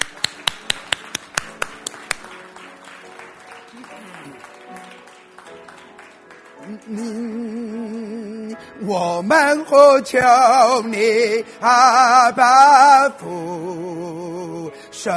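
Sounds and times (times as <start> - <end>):
rhythmic hand claps in unison: 0.0 - 8.0
sustained singing or music: 6.4 - 15.1
speech: 6.9 - 7.4, 8.8 - 13.8, 15.0 - 15.1.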